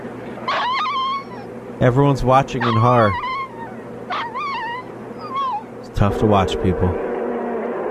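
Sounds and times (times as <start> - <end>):
faint steady noise: 0.0 - 7.8
dog being attacked whimpering and yipping: 0.5 - 1.5, 2.6 - 5.8
speech: 1.8 - 3.3, 6.0 - 7.0.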